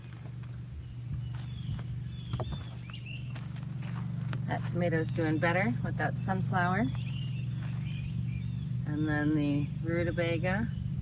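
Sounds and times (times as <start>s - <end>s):
footsteps walking through a vegetable garden: 0.0s - 8.0s
low continuous hum: 0.0s - 10.9s
speech: 4.5s - 7.0s, 8.9s - 10.8s.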